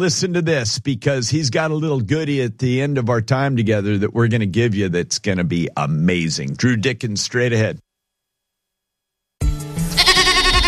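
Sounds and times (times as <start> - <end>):
speech: 0.0 - 7.9
goat bleating: 9.9 - 10.6.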